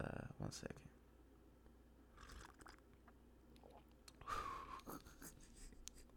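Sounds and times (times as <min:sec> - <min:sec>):
speech: 0:00.0 - 0:01.0
low noise: 0:00.0 - 0:06.1
slurping sip of hot vanilla tea: 0:02.2 - 0:02.8.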